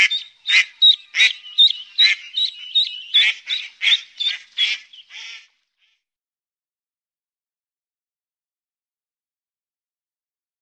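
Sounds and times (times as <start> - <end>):
mallard quacking: 0.0 - 5.5.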